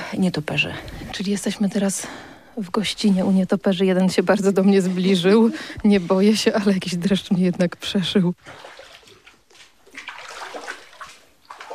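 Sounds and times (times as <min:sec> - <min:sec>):
speech: 0:00.2 - 0:08.8
feet tramping through shallow water and mud in an underground structure: 0:07.8 - 0:11.7.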